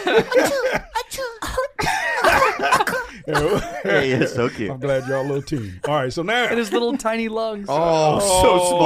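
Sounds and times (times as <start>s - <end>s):
laughter: 0.0s - 1.0s, 2.0s - 7.0s
speech: 0.1s - 0.8s, 3.3s - 8.8s
voice imitating tiny squeaky coughs: 0.3s - 4.2s.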